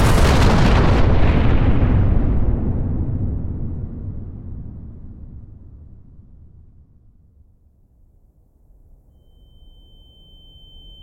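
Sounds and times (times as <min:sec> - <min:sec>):
massive roaring explosion from a uranium atom bomb dropped by a B-29 bomber over Hiroshima: 0:00.0 - 0:07.2.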